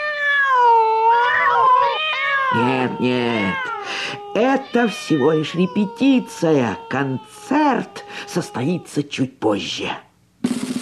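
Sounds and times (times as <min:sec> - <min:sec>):
cat in a garden meowing and caterwauling: 0:00.0 - 0:09.1
speech: 0:02.5 - 0:10.1.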